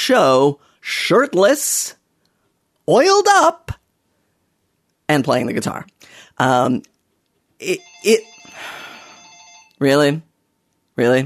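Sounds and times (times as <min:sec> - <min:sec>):
speech: 0:00.0 - 0:02.0, 0:02.9 - 0:03.8, 0:05.1 - 0:06.9, 0:07.6 - 0:08.8, 0:09.8 - 0:10.3, 0:11.0 - 0:11.2
telephone ringing with a sustained rattling bell tone: 0:07.7 - 0:09.8.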